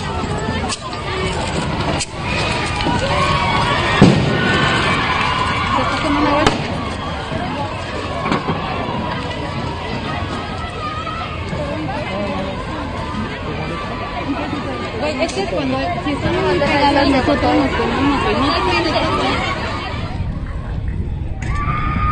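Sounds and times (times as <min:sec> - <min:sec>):
crowd commotion in a clash between protesters and police: 0:00.0 - 0:22.1
protesters and police shouting in a clash: 0:02.2 - 0:15.1, 0:16.2 - 0:20.2
sharp bangs in a protest clash: 0:03.9 - 0:05.3.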